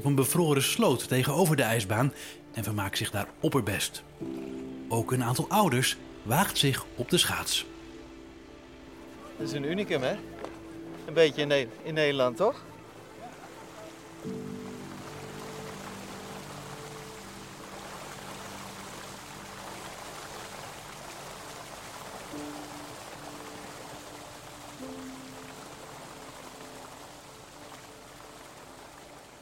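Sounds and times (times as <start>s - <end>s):
speech: 0.0s - 7.7s, 9.4s - 10.3s, 11.1s - 12.7s
pump pouring water onto an ice rink in Ruinen Netherlands: 0.0s - 29.3s.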